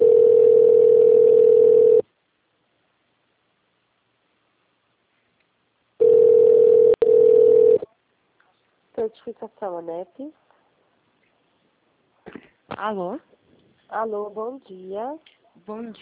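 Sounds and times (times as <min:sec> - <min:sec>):
telephone tone while a call connects to an extension: 0:00.0 - 0:02.0, 0:06.0 - 0:07.8
speech: 0:09.1 - 0:10.5, 0:12.8 - 0:16.0.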